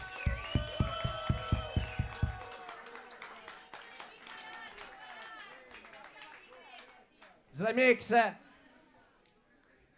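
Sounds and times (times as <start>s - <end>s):
whistling: 0.0s - 2.4s
crowd cheering: 0.0s - 5.7s
crowd clapping rhythmically: 0.0s - 7.4s
speech: 7.6s - 8.4s.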